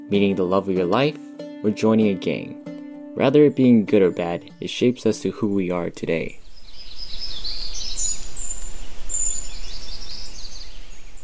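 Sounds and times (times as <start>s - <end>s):
speech: 0.1s - 6.4s
birds chirping outdoors: 4.1s - 11.2s.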